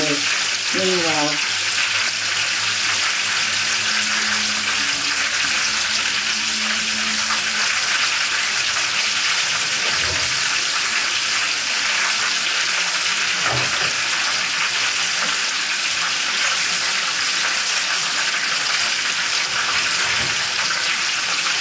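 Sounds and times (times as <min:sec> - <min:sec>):
food frying in hot oil: 0:00.0 - 0:21.5
speech: 0:00.1 - 0:01.7.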